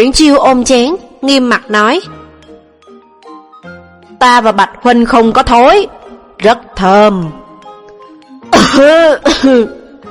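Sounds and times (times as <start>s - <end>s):
speech: 0.0s - 2.2s, 4.2s - 7.4s, 8.8s - 9.8s
voice imitating a man choking on a drink, harsh coughs: 8.5s - 9.7s.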